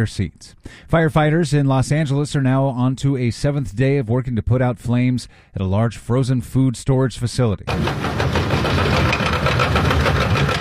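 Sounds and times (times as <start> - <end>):
speech: 0.0 - 9.2
skid steer engine clearing debris around a fire-damaged frozen food storage warehouse: 7.7 - 10.5.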